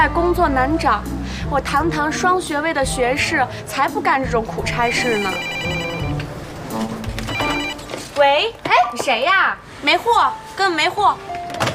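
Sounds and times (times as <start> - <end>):
speech: 0.0 - 5.8, 8.2 - 11.4
telephone ringing with electronic tone: 4.7 - 6.3, 7.2 - 8.0.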